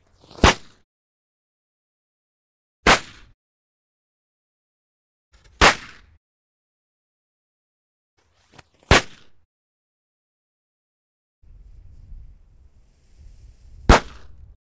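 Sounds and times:
firecracker explosion: 0:13.7 - 0:14.5.

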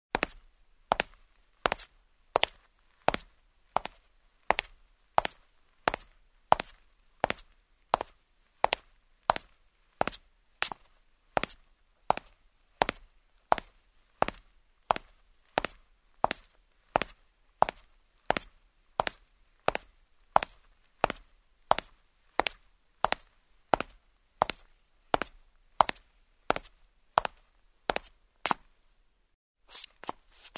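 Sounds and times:
footsteps in shoes on a marble floor: 0:00.2 - 0:28.6.

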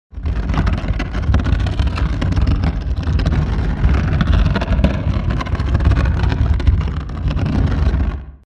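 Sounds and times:
wooden object dragged across the floor: 0:00.1 - 0:08.4.

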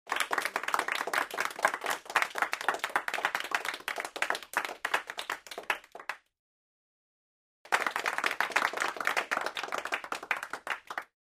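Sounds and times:
applause in a small room: 0:00.0 - 0:06.3, 0:07.7 - 0:11.1.

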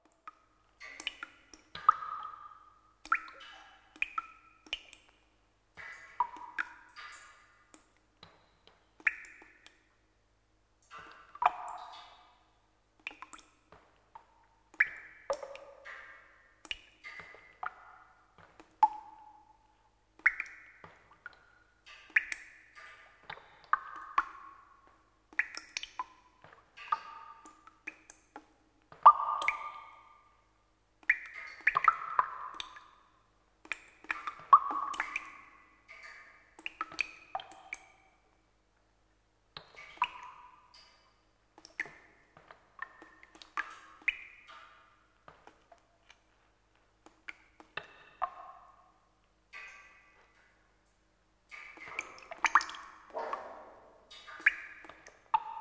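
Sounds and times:
water dripping in a cave: 0:00.0 - 0:55.6.

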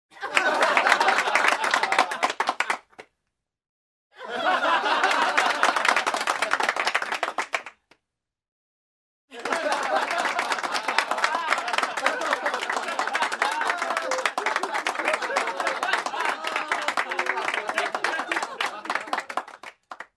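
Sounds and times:
laughter in a small room: 0:00.1 - 0:02.4, 0:04.2 - 0:06.1, 0:09.3 - 0:19.6
applause in a small room: 0:00.2 - 0:03.2, 0:04.4 - 0:08.0, 0:09.3 - 0:20.1.

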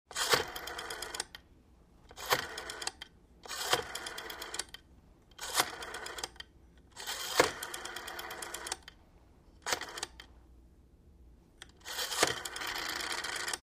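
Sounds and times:
rotary telephone dialing a number: 0:00.1 - 0:01.4, 0:02.1 - 0:04.8, 0:05.4 - 0:06.4, 0:07.0 - 0:08.9, 0:09.6 - 0:10.3, 0:11.6 - 0:13.6.

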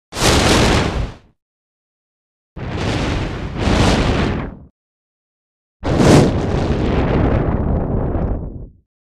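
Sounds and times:
flame burning in the wind: 0:00.2 - 0:01.1, 0:02.6 - 0:04.7, 0:05.8 - 0:08.8.

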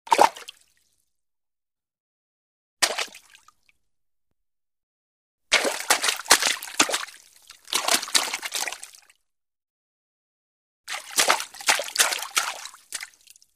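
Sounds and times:
water splash: 0:02.8 - 0:03.3, 0:05.5 - 0:08.8, 0:10.9 - 0:13.2.

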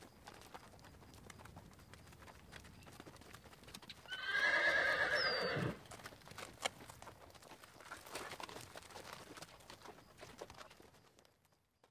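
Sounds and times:
light hoof sounds: 0:00.0 - 0:11.8
horse giving a loud quavering neigh: 0:04.1 - 0:05.8.

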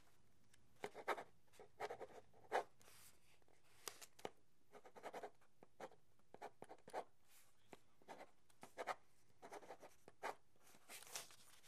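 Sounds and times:
ballpoint pen writing: 0:00.8 - 0:02.8, 0:04.7 - 0:11.1.

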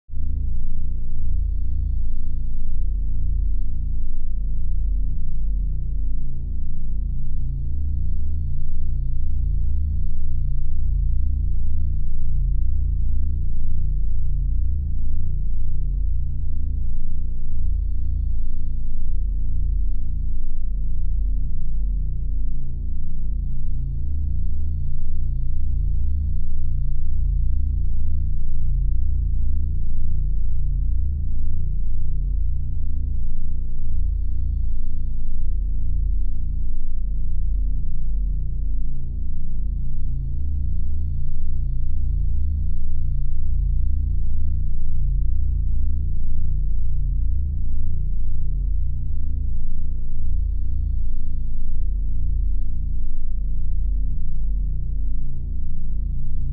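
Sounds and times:
radio signal hum: 0:00.0 - 0:56.5
pulsating low-frequency radio signal: 0:00.1 - 0:56.5.

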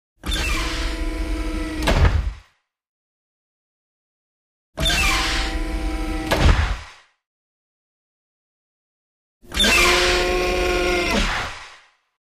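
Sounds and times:
hydraulic door: 0:00.2 - 0:02.4, 0:04.8 - 0:06.9, 0:09.5 - 0:11.6.

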